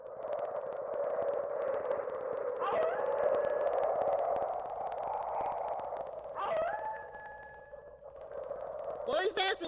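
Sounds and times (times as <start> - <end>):
steady roaring wind: 0.0 - 7.2
wolves howling: 2.6 - 4.1, 5.3 - 7.9.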